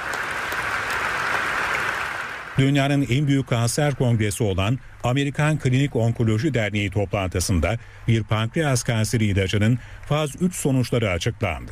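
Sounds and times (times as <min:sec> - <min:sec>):
scientists applauding in a standing ovation at a cancer congress hall: 0:00.0 - 0:02.7
speech: 0:02.6 - 0:11.7.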